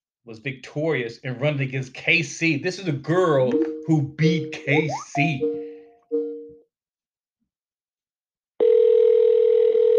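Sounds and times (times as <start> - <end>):
speech: 0.2 - 5.6
telephone ringback tone on an outgoing call: 8.6 - 9.9.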